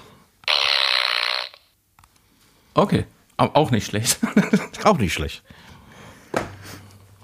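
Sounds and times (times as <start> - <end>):
raspy fart sound effect played from a small soundboard device: 0.4 - 1.7
speech: 2.8 - 5.6
laughter: 4.1 - 4.8.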